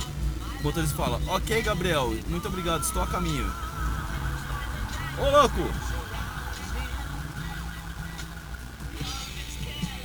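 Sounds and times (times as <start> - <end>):
traffic rumble with engine noise: 0.0 - 10.0
speech: 0.6 - 3.6, 5.2 - 5.9
emergency siren wailing: 3.6 - 9.4.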